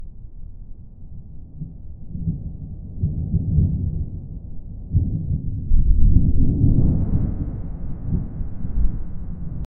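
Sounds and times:
thunder: 1.1 - 9.7
wind howling: 5.8 - 9.7.

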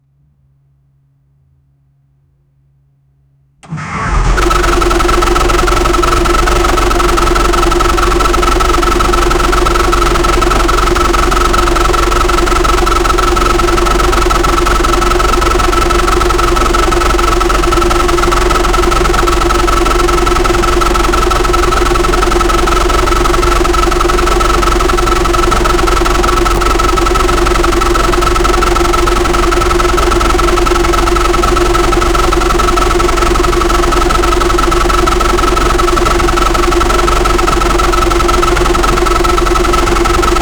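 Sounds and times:
boat engine: 3.6 - 40.4.

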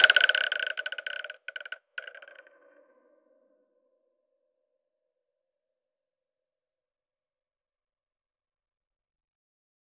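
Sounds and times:
single dry wooden clap hit: 0.0 - 1.7.

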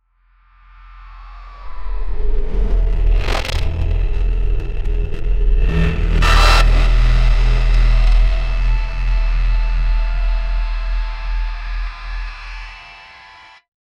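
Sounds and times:
cinematic time stop deep bass pulse: 1.5 - 12.5.

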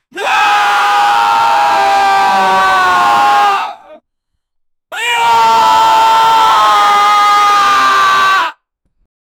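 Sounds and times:
murloc creature screaming with anger: 0.2 - 4.0, 5.0 - 8.6.

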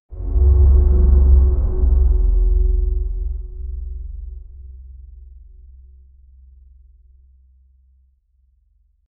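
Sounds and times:
deep earth-shattering rumble: 0.1 - 7.2.

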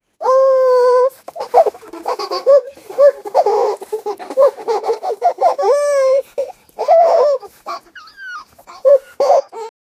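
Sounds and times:
two puppies giggling: 0.7 - 9.7.

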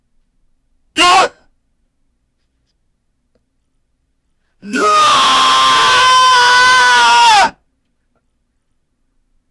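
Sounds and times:
wrestler screaming in pain: 4.6 - 7.6.

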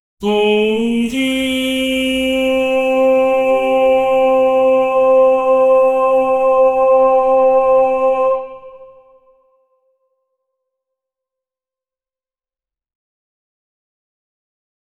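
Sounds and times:
dramatized vocal sound: 0.2 - 9.3.

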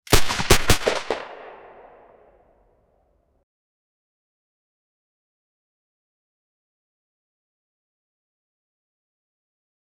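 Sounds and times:
heavy two-ton mech rifle firing: 0.1 - 2.1.

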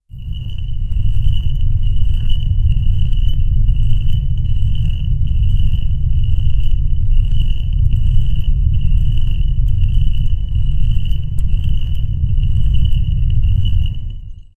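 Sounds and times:
medieval dark fantasy dungeon ambience: 0.1 - 14.3.

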